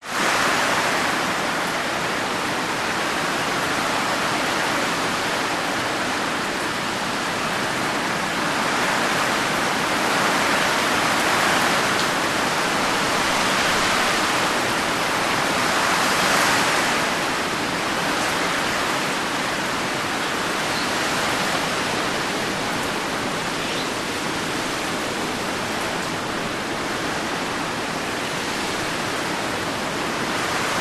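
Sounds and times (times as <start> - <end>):
heavy subtropical rain blown by strong winds: 0.0 - 30.8
strong subtropical winds: 0.0 - 30.8.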